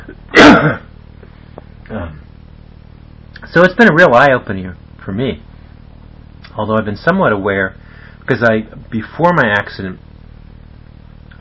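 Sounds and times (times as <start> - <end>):
person coughing harshly: 0.0 - 0.9
softer throat-clearing: 0.0 - 0.9
speech: 3.6 - 5.5, 6.6 - 10.0.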